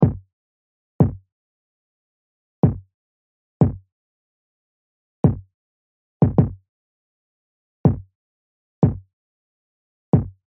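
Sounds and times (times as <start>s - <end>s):
kick drum loop: 0.0s - 0.2s, 1.0s - 1.2s, 2.6s - 2.8s, 3.6s - 3.8s, 5.2s - 5.4s, 6.2s - 6.6s, 7.9s - 8.1s, 8.8s - 9.0s, 10.2s - 10.4s.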